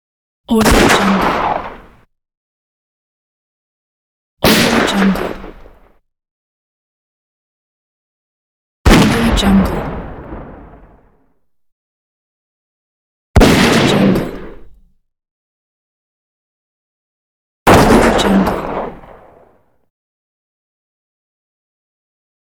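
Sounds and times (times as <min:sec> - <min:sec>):
gunshot: 0:00.5 - 0:02.0, 0:04.4 - 0:06.0, 0:08.9 - 0:11.2, 0:13.4 - 0:14.8, 0:17.7 - 0:19.6.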